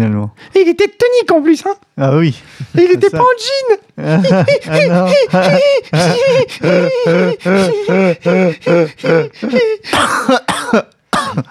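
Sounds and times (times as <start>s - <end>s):
speech: 0.0s - 11.4s
laughter: 2.6s - 10.5s
person coughing with hoarse hacks: 8.7s - 11.4s
throat clearing: 9.9s - 11.4s.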